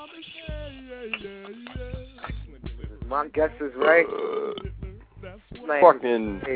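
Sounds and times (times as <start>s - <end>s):
speech: 3.1s - 4.8s, 5.7s - 6.5s
low guttural burp: 3.8s - 5.0s.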